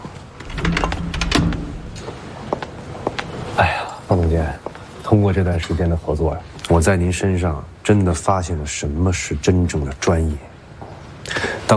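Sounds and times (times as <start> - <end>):
door being closed with a sliding, rattling clunk: 0.4 - 2.2
speech: 3.6 - 10.5.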